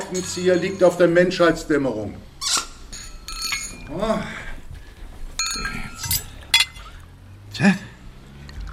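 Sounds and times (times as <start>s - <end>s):
wine glasses clinking in a toast at a dinner table: 0.0s - 1.7s, 2.5s - 4.7s, 5.4s - 7.2s
speech: 0.1s - 2.3s, 3.9s - 4.4s, 7.6s - 7.8s
soft rustling: 0.3s - 7.3s.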